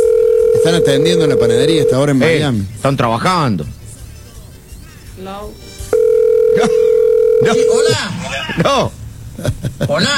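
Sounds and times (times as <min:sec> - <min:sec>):
outgoing phone call ringing tone: 0:00.0 - 0:02.4, 0:05.9 - 0:08.1
speech: 0:00.7 - 0:03.8, 0:05.2 - 0:05.7, 0:06.6 - 0:10.1.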